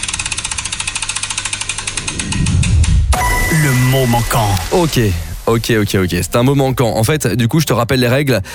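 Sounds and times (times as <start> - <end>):
game show prize wheel being spun: 0.1 - 6.9
low swell: 1.8 - 6.9
speech: 4.1 - 8.5.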